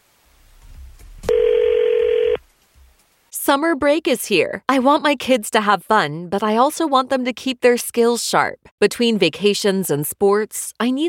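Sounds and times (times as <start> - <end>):
steady mid-pitched electronic telephone tone: 1.3 - 2.4
speech: 3.5 - 11.0.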